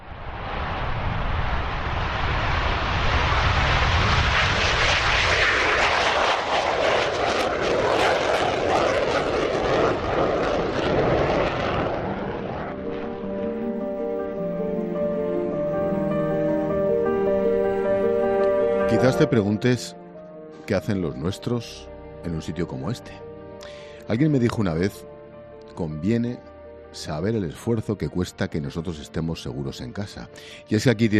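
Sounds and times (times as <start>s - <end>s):
F-18 jet roaring while accelerating down the runway for takeoff: 0.0s - 19.0s
speech: 19.0s - 20.0s, 20.7s - 23.2s, 24.1s - 25.1s, 25.8s - 31.1s.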